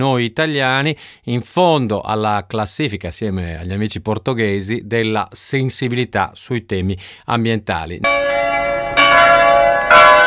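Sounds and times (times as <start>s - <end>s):
speech: 0.0s - 8.3s
church bells ringing in Denmark during a nationwide peal: 8.0s - 10.2s.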